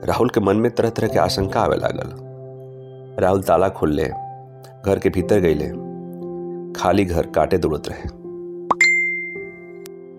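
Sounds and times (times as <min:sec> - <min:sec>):
speech: 0:00.0 - 0:02.3, 0:03.2 - 0:04.2, 0:04.8 - 0:05.9, 0:06.8 - 0:08.2
two-part phone notification chime with plop and ding: 0:08.7 - 0:09.8.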